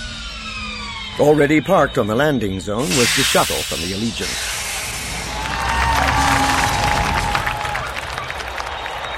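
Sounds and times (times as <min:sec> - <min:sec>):
speech: 0:01.2 - 0:04.6
large crowd roaring in a plaza: 0:05.0 - 0:09.1
scattered clapping: 0:05.3 - 0:09.1.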